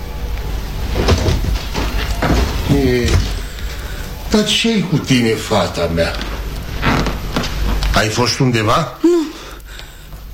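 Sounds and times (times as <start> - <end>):
short creaking squeal of house door hinges: 0.9 - 3.9, 6.0 - 8.0
house door pushed open with wooden knocks and clunks: 1.0 - 3.5
speech: 2.8 - 3.3, 4.3 - 6.3, 8.0 - 9.3.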